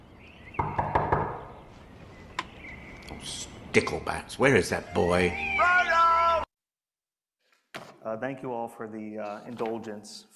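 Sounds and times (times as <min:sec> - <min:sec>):
knocking on a wooden door: 0:00.6 - 0:01.5
speech: 0:03.2 - 0:05.7, 0:08.1 - 0:10.3.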